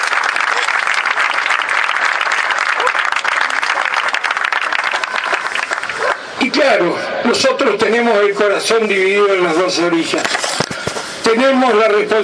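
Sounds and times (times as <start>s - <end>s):
audience applause: 0.0s - 6.4s
speech: 6.7s - 10.4s, 11.3s - 12.2s.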